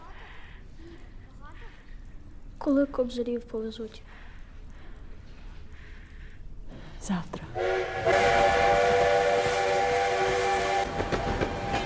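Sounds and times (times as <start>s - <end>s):
speech: 2.6s - 4.2s, 7.1s - 8.4s
steam locomotive pulling freight wagons rumbling: 7.4s - 11.8s
steam locomotive multi-tone whistle: 7.6s - 11.8s
freight wagons clacking: 10.8s - 11.8s.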